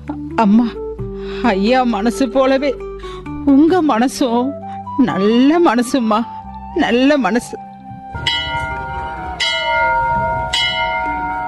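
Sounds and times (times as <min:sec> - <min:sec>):
speech: 0:00.4 - 0:07.6
temple bell ringing: 0:08.1 - 0:11.4.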